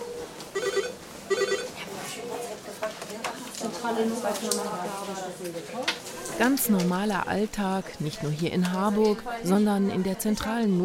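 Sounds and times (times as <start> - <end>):
telephone ringing with electronic trilling: 0.0 - 1.8
voices and bustle in a room: 1.0 - 10.8
speech: 3.8 - 10.8.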